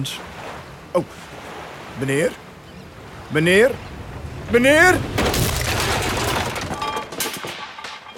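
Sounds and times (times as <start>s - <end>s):
speech: 0.0s - 0.3s, 0.9s - 1.4s, 2.0s - 2.4s, 3.3s - 3.9s, 4.5s - 5.2s
boat crashing into a quay: 4.5s - 8.1s.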